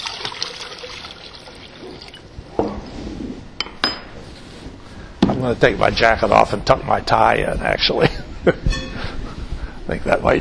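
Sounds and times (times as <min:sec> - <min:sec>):
liquid latex mold builder of natural latex, water and ammonia pouring into water: 0:00.0 - 0:02.3
speech: 0:05.4 - 0:08.8, 0:09.9 - 0:10.3.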